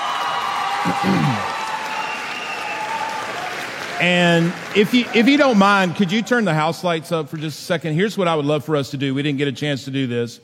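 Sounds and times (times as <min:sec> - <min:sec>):
large audience applauding: 0:00.0 - 0:06.8
speech: 0:00.8 - 0:01.5, 0:04.0 - 0:10.4.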